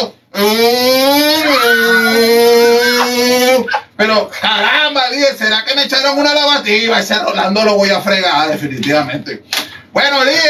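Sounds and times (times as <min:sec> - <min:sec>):
person imitating a revving motorcycle engine: 0:00.4 - 0:03.7
speech: 0:04.0 - 0:10.4.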